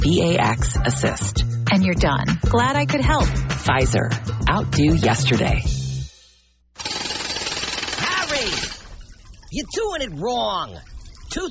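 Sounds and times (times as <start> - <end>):
speech: 0.0 - 5.8, 9.5 - 11.4
jackhammer pounding: 6.8 - 8.9.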